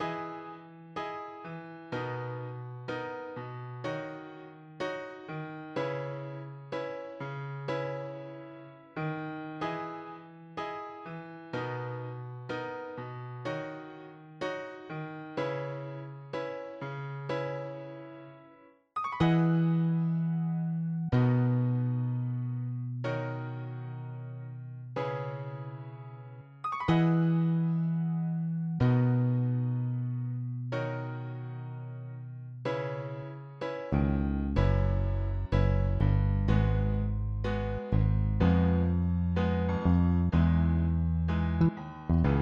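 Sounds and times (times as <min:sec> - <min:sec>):
piano bass: 0:00.0 - 0:17.8, 0:19.0 - 0:42.4.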